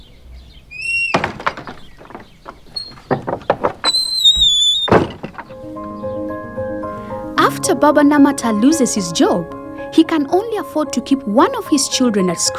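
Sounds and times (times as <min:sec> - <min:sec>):
high squeaky door hinge squeal: 0:00.7 - 0:05.6
wooden clunks and rattles of a door being unlatched: 0:00.7 - 0:06.1
speech: 0:07.7 - 0:12.5.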